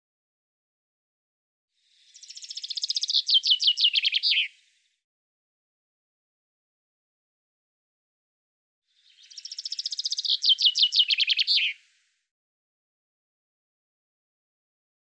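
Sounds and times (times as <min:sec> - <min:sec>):
common chaffinch singing: 0:02.0 - 0:04.6, 0:09.0 - 0:11.8.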